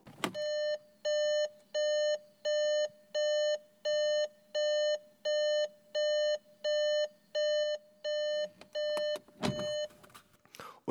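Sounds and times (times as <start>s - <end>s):
car warning chime beeping: 0.4s - 10.0s
thump: 9.4s - 9.8s.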